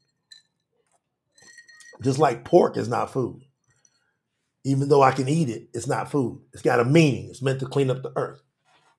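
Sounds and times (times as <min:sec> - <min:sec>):
drinking glass clinking: 0:00.0 - 0:04.1
speech: 0:02.0 - 0:03.5, 0:04.6 - 0:08.5.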